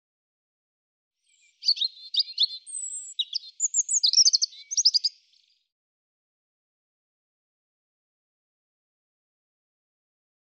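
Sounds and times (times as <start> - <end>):
European robin singing: 1.2 - 5.6.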